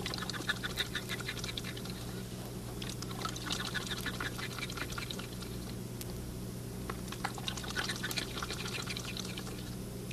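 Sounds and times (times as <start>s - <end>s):
thirsty zoo duck drinking water: 0.0s - 2.2s, 2.8s - 5.8s, 7.1s - 9.8s
steady low hum: 0.0s - 10.1s.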